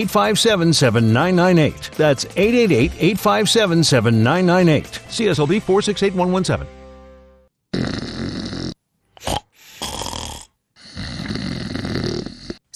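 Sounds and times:
speech: 0.0 - 6.8
person snoring loudly: 7.7 - 12.7.

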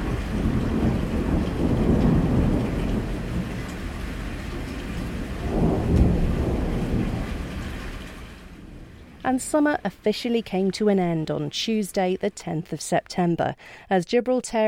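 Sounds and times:
deep thunder rumbling: 0.0 - 10.4
heavy rain pouring: 0.0 - 12.4
speech: 9.3 - 14.6.

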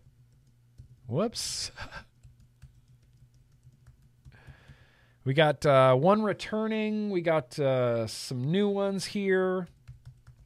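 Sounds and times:
typing on a computer keyboard: 0.1 - 1.0, 2.1 - 4.8, 9.7 - 10.4
speech: 1.1 - 2.1, 5.2 - 9.8.

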